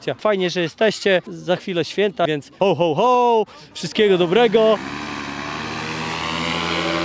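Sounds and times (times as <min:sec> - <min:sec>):
speech: 0:00.0 - 0:05.1
homemade motorized flying sleigh propeller engine drone on takeoff: 0:04.0 - 0:07.0.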